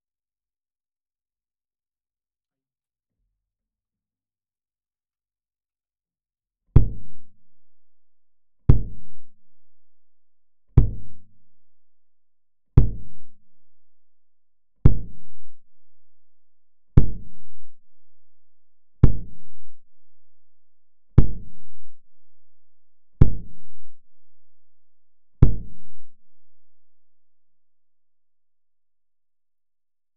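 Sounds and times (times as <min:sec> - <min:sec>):
kick drum with 15dB pad: 0:06.8 - 0:07.4, 0:08.7 - 0:09.4, 0:10.7 - 0:11.4, 0:12.8 - 0:13.5, 0:14.8 - 0:15.4, 0:17.0 - 0:17.9, 0:19.0 - 0:19.9, 0:21.2 - 0:22.1, 0:23.2 - 0:23.7, 0:25.4 - 0:26.2.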